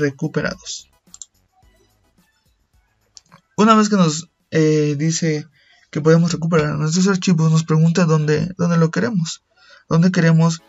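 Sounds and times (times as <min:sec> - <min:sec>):
speech: 0:00.0 - 0:00.9, 0:03.6 - 0:10.6
computer mouse clicks on a recover button: 0:01.1 - 0:01.3.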